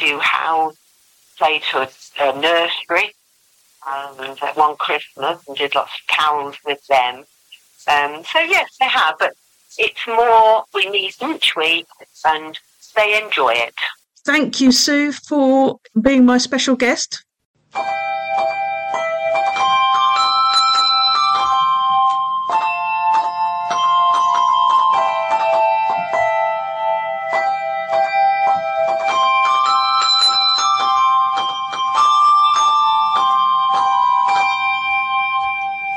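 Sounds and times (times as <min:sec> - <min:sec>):
speech: 0:00.2 - 0:00.8, 0:01.4 - 0:03.2, 0:03.8 - 0:18.7
handbells ringing a melody: 0:17.8 - 0:35.9.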